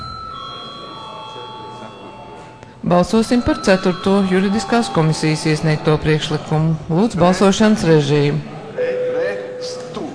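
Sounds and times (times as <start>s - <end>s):
electric bell rung in a parliament to call a vote: 0.0s - 6.8s, 8.9s - 9.9s
speech: 2.9s - 8.5s.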